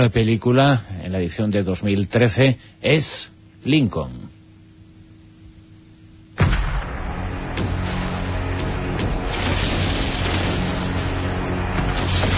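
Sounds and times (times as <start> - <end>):
speech: 0.0 - 4.4
naval fleet artillery bombardment in a film scene: 6.4 - 12.3.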